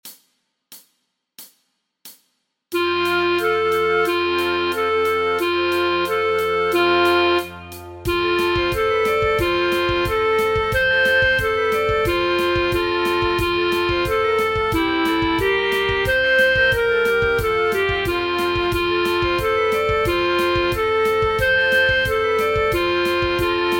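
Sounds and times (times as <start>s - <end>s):
flute for practice tracks: 2.8s - 23.7s.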